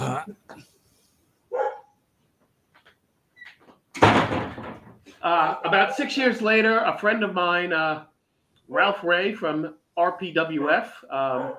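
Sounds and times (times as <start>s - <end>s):
speech: 0.2s - 0.4s, 5.2s - 8.1s, 8.7s - 11.5s
dog barking: 1.5s - 1.9s, 11.3s - 11.5s
door slamming shut: 3.9s - 5.0s.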